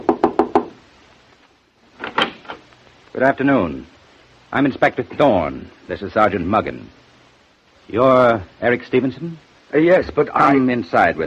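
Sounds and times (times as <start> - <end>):
knuckles knocking on a hotel room door: 0.0 - 0.7
speech: 3.2 - 7.0, 7.9 - 11.2.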